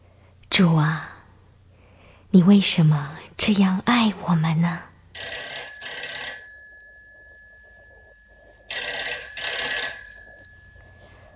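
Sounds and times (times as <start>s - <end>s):
speech: 0.6s - 1.1s, 2.3s - 4.9s
telephone ringing with a bright trilling bell: 5.2s - 11.3s.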